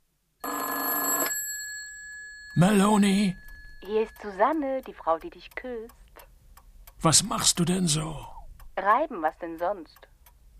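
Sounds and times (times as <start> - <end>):
telephone bell ringing: 0.4 - 4.4
speech: 2.6 - 6.0, 7.0 - 10.1.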